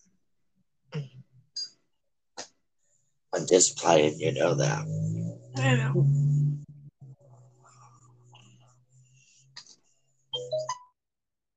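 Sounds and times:
speech: 3.4s - 6.2s
electronic phone alert chime: 10.4s - 10.9s.

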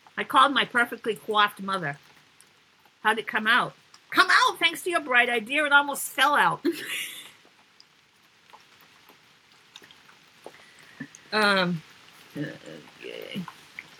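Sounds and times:
light drips and taps: 0.0s - 3.0s, 3.7s - 4.2s, 6.6s - 13.9s
soft rain pattering: 0.0s - 13.9s
speech: 0.2s - 2.1s, 3.0s - 7.0s, 11.3s - 13.6s.

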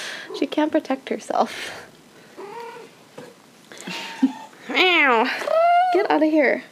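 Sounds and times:
speech: 0.3s - 2.0s, 4.8s - 6.7s
needy cat meowing and yowling: 2.4s - 2.9s.

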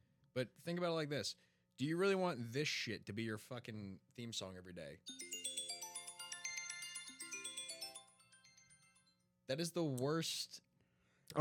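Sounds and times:
speech: 0.4s - 5.4s, 9.5s - 10.7s
iPhone alarm tone with bright electronic chimes: 5.1s - 9.1s.

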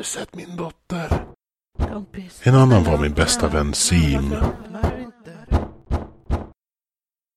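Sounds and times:
speech: 0.0s - 1.3s, 2.0s - 5.0s
firm knocking on a door: 4.4s - 6.6s.

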